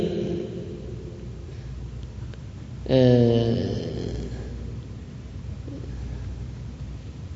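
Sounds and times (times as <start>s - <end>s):
speech: 2.9s - 3.8s
voice imitating human snoring: 2.9s - 4.6s.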